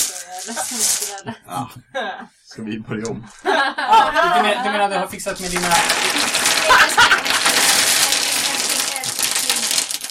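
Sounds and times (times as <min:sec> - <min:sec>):
dice being shaken and handled: 0:00.0 - 0:01.2, 0:05.2 - 0:10.0
speech: 0:00.4 - 0:07.2
laughter: 0:03.2 - 0:05.0, 0:06.4 - 0:07.7.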